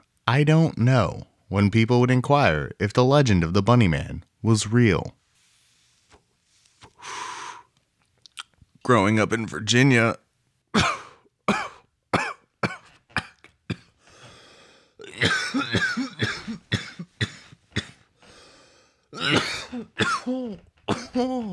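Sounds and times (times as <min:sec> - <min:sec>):
speech: 0:00.3 - 0:05.2, 0:08.8 - 0:10.2, 0:10.8 - 0:11.6, 0:19.8 - 0:21.5
gasping breaths: 0:06.9 - 0:07.8, 0:13.9 - 0:15.1, 0:18.2 - 0:19.1
person coughing hard after swallowing the wrong way: 0:10.8 - 0:14.0, 0:15.0 - 0:18.1, 0:19.2 - 0:21.5
throat clearing: 0:10.8 - 0:14.0, 0:15.0 - 0:18.1, 0:19.2 - 0:21.5.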